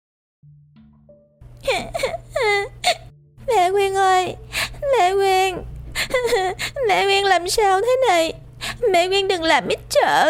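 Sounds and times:
steady low hum: 1.4 - 10.2
young girl wailing and crying beside a woman on drip and oxygen lines: 1.6 - 8.9
speech: 1.7 - 2.8, 3.7 - 10.2.

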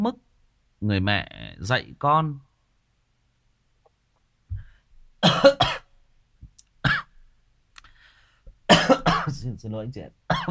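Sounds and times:
speech: 0.0 - 2.5, 5.2 - 5.8, 8.7 - 10.4
dry coughs: 5.2 - 5.9, 6.8 - 7.2, 8.7 - 9.4.

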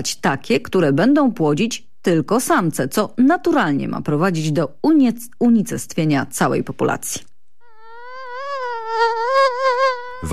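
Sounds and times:
speech: 0.0 - 7.3, 8.9 - 10.3
malaria-carrying mosquito buzzing: 7.6 - 10.3.

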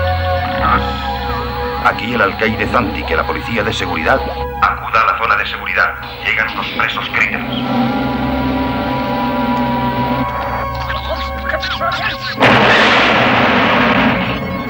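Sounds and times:
steady humming drone with wavering tones: 0.0 - 4.7, 5.9 - 14.6
speech: 1.8 - 8.3
explosion in the security zone of a prison: 12.4 - 14.6.

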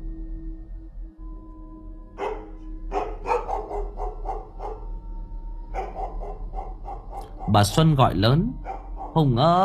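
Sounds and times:
low steady hum: 0.0 - 9.6
dog barking outside: 2.2 - 5.0, 5.7 - 7.8, 8.6 - 9.2
speech: 7.5 - 9.6.

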